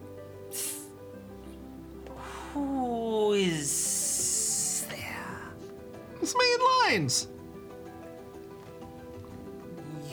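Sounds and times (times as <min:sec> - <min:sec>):
big dangerous snake hissing: 0:00.4 - 0:01.2, 0:02.1 - 0:02.8, 0:03.6 - 0:05.6
speech: 0:06.3 - 0:07.4.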